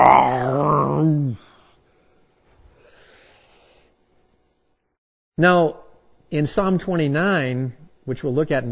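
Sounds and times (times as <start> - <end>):
speech: 0.0 - 1.4, 5.4 - 8.6
man's voice imitating a lion's roar: 0.0 - 1.5.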